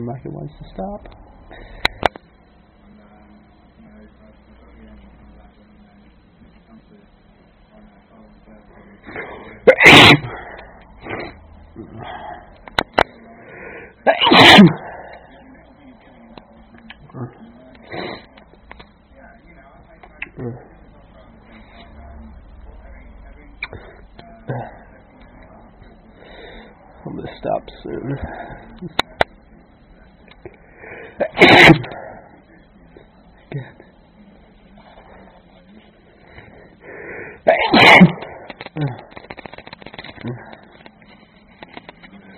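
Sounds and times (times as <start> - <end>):
speech: 0.0 - 2.2, 14.6 - 14.8
low hum: 0.0 - 42.3
small vocal noises: 8.6 - 19.0, 23.5 - 42.3
person sneezing loudly: 9.7 - 10.5, 14.1 - 14.9, 31.2 - 32.0, 37.4 - 39.0.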